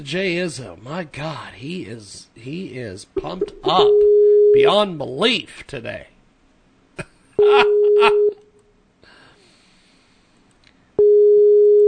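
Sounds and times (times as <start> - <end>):
speech: 0.0 - 6.1, 7.0 - 8.3
phone ringback tones on the line: 7.4 - 8.4, 11.0 - 11.8.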